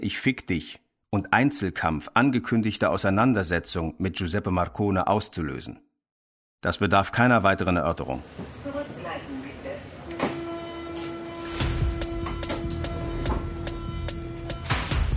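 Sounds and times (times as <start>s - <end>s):
speech: 0.0s - 5.9s, 6.6s - 9.2s
droning tone of train pulling through U-Bahnhof Friedrichstraße subway station: 9.0s - 14.7s.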